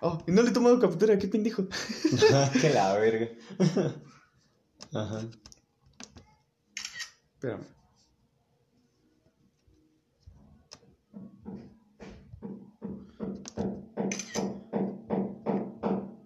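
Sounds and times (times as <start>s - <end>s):
speech: 0.0s - 4.2s, 4.9s - 5.5s, 7.4s - 7.8s
laughter: 1.7s - 4.1s
neighbor hammering: 11.1s - 16.2s.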